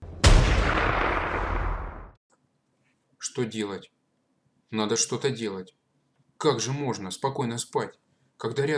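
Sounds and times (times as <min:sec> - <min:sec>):
gunshot with rumbling echo: 0:00.0 - 0:02.2
speech: 0:03.4 - 0:04.0, 0:04.7 - 0:05.8, 0:06.4 - 0:08.7.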